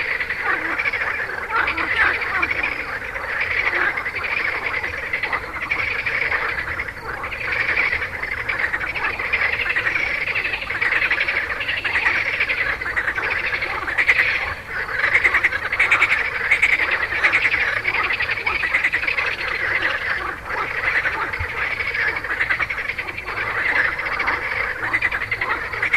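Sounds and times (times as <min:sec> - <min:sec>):
frogs calling in a dense chorus of pulsed croaks and trills: 0:00.0 - 0:25.9.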